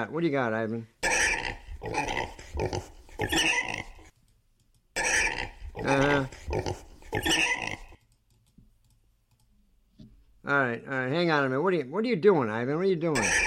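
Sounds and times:
speech: 0:00.0 - 0:00.9, 0:01.8 - 0:04.0, 0:05.8 - 0:07.8, 0:10.5 - 0:13.4
pig grunting and snorting: 0:01.0 - 0:04.1, 0:05.0 - 0:08.0, 0:13.2 - 0:13.4.

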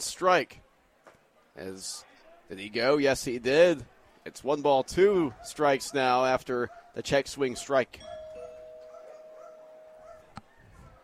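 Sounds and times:
speech: 0:00.0 - 0:00.7, 0:01.6 - 0:08.2
several dogs barking faintly: 0:05.3 - 0:11.0
double ring of a doorbell: 0:08.0 - 0:10.3.

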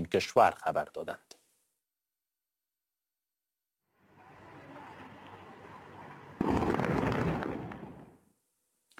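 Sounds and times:
speech: 0:00.0 - 0:01.4
sudden loud blast booming: 0:06.4 - 0:08.0
deep rumbling explosions in Ahvaz shaking buildings and windows: 0:06.4 - 0:08.2.

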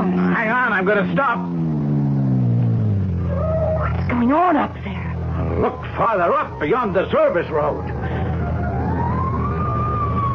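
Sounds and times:
constant low engine rumble: 0:00.0 - 0:10.3
speech: 0:00.4 - 0:01.7, 0:04.1 - 0:08.2
fire engine siren wailing near a sanitarium driveway: 0:05.2 - 0:10.3.

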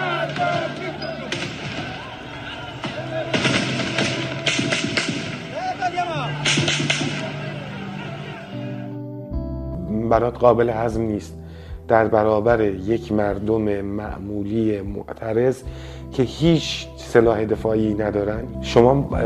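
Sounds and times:
bursts of gunfire and machine gun shots: 0:00.0 - 0:07.8
shouting voices: 0:00.0 - 0:09.0
noisy outdoor crowd: 0:00.0 - 0:09.1
speech: 0:10.1 - 0:19.2.

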